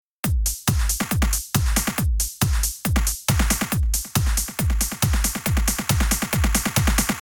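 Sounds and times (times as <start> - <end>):
snare drum: 0.3 - 7.2.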